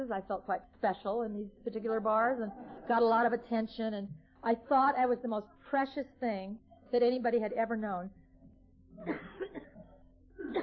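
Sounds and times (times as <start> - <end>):
speech: 0.0 - 8.2, 9.0 - 9.7
person coughing from a scratchy throat: 9.0 - 9.8, 10.4 - 10.6.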